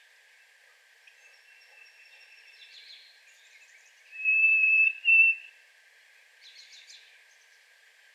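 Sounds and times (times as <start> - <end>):
Harris's sparrow whistling song in a yard: 1.2 - 5.5.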